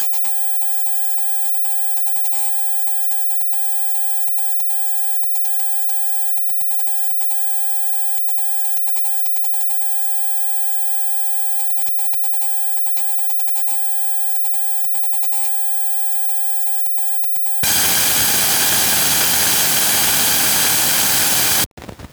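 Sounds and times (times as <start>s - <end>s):
amplifier: 17.6s - 21.7s.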